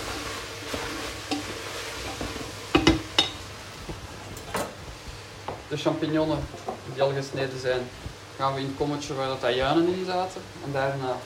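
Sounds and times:
sizzling and stirring in a frying pan: 0:00.0 - 0:11.2
sweet potato clattering into a frying pan: 0:00.7 - 0:03.4
speech: 0:05.7 - 0:11.2.

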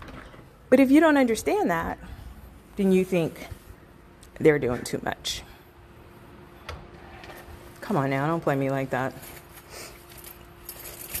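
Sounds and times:
speech: 0:00.7 - 0:02.2, 0:02.8 - 0:03.6, 0:04.4 - 0:05.5, 0:07.9 - 0:09.9
metallic jangle of keys with clinks and rustles: 0:09.3 - 0:11.1.

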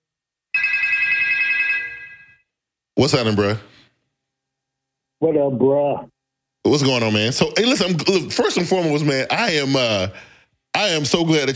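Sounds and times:
telephone ringing with a bright electronic ring tone for an incoming call: 0:00.5 - 0:02.5
speech: 0:03.0 - 0:03.7, 0:05.2 - 0:11.5.

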